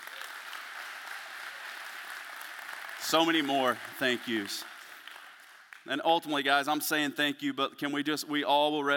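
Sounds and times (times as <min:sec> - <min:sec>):
room full of people applauding a building's general contractor: 0:00.0 - 0:05.9
speech: 0:03.0 - 0:04.7, 0:05.8 - 0:08.9.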